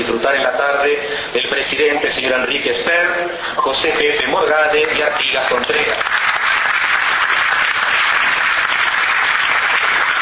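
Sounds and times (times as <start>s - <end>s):
speech: 0.1s - 6.3s
audience applause: 5.6s - 10.2s.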